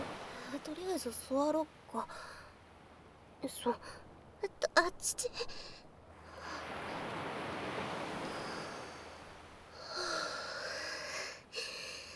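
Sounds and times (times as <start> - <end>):
ocean waves washing on the shore: 0.0 - 0.9, 6.1 - 10.8
speech: 0.7 - 2.4, 3.4 - 5.8.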